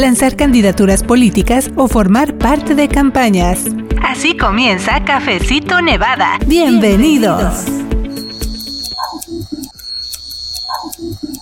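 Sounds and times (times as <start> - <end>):
speech: 0.0 - 8.0
high electric whine in a barbershop: 7.8 - 11.4.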